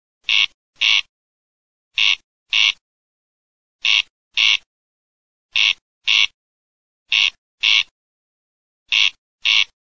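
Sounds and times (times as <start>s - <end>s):
king quail calling: 0.3s - 1.1s, 2.0s - 2.8s, 3.8s - 4.7s, 5.5s - 6.4s, 7.1s - 7.9s, 8.9s - 9.8s.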